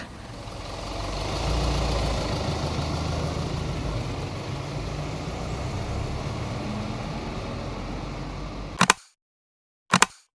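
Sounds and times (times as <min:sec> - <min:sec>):
doorless bus rumbling while driving: 0:00.0 - 0:08.8
road noise: 0:00.0 - 0:08.8
brief bursts: 0:08.8 - 0:09.2, 0:09.9 - 0:10.3.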